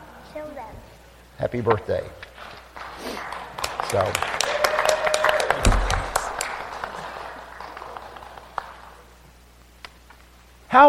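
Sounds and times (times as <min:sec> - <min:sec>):
speech: 0:00.4 - 0:02.3, 0:03.9 - 0:04.4
audience applause: 0:02.7 - 0:09.2.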